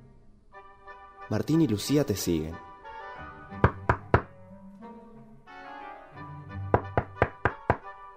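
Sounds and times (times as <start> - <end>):
speech: 1.3 - 2.7
knocking on a wooden cabin door: 3.6 - 4.3, 6.7 - 7.9.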